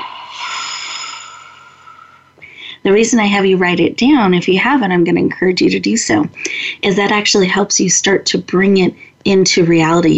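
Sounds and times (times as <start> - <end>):
person taking a deep breath during a guided breathing exercise: 0.0 - 2.8
speech: 2.8 - 10.1.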